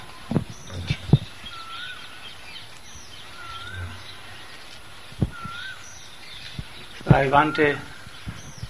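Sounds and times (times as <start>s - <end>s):
faint cuckoo calls: 0.0s - 8.6s
speech: 7.2s - 7.9s.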